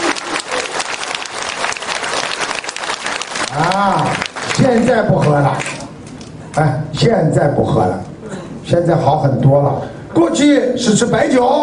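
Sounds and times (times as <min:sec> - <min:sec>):
audience applause: 0:00.0 - 0:05.8
speech: 0:03.6 - 0:05.8, 0:06.6 - 0:08.1, 0:08.7 - 0:11.6.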